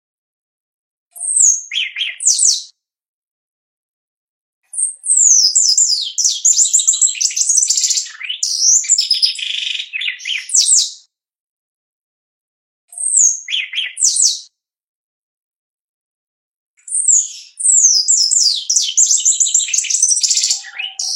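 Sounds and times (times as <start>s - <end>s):
Shiny cowbird song: 1.1s - 2.8s, 4.7s - 11.1s, 12.9s - 14.6s, 16.8s - 21.1s.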